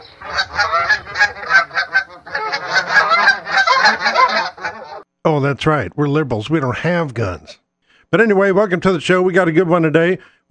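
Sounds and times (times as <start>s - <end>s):
flock of geese honking: 0.0s - 5.0s
speech: 5.2s - 10.4s.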